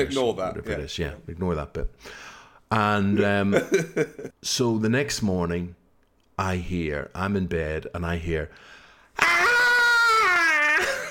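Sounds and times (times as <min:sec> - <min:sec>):
speech: 0:00.0 - 0:05.8, 0:06.4 - 0:09.5
voice imitating a high banshee-like wailing squeal: 0:09.2 - 0:11.0.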